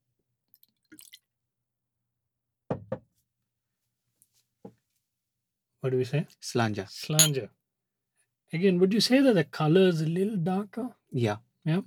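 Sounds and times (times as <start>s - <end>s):
Glenfiddich 15 whiskey being poured into a glass: 0.9s - 1.2s
speech: 5.8s - 7.6s, 8.5s - 11.8s.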